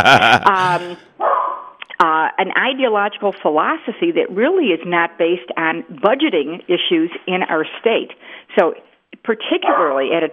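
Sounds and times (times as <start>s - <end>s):
laughter: 0.0s - 1.0s
speech: 0.0s - 1.1s, 2.4s - 10.3s
dog barking: 1.2s - 1.7s.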